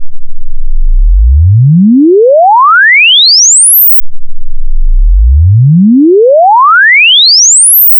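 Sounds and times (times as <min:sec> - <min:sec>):
sine sweeps: 0:00.0 - 0:07.9.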